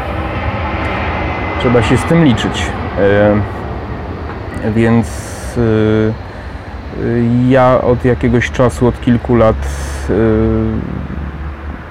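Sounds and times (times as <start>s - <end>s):
airplane engine roar passing overhead near airport: 0.0s - 11.9s
speech: 1.6s - 3.6s, 4.6s - 6.3s, 7.0s - 11.1s.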